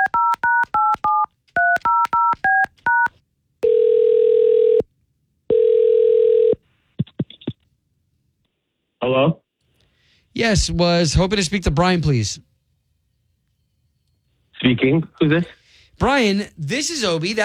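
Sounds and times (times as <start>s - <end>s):
telephone number dialed on a touch-tone keypad: 0.0s - 3.1s
long steady telephone ringing tones: 0.0s - 4.8s, 5.5s - 6.6s
speech: 10.4s - 12.5s, 14.8s - 17.4s.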